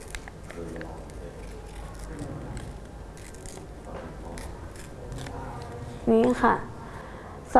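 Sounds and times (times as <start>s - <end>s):
paper being torn slowly by hand: 0.0s - 5.8s
speech: 6.1s - 6.7s.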